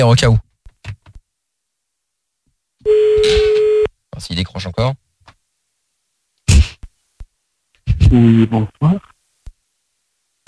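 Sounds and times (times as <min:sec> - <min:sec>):
speech: 0:00.0 - 0:00.4, 0:04.2 - 0:05.0, 0:08.1 - 0:09.1
telephone ringing tone while placing a call: 0:02.8 - 0:03.9.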